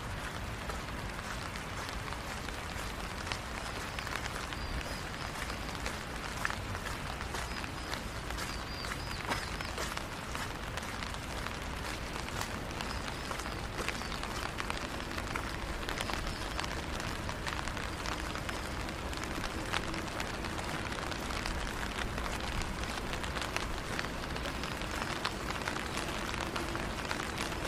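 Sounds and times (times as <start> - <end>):
low rumble of passing traffic: 0.0 - 27.6
rain pattering on surfaces in a neighborhood: 0.0 - 27.6.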